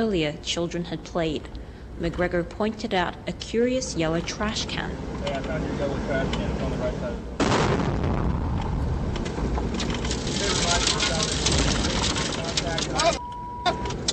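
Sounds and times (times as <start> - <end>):
speech: 0.0 - 8.0, 12.7 - 13.2
military vehicle engine noise: 1.5 - 7.4, 8.3 - 14.1
roadside bomb blast striking a moving military vehicle: 7.3 - 12.7
loud sustained roar and rumble of debris: 7.4 - 13.2
brief electronic beep: 13.2 - 14.0.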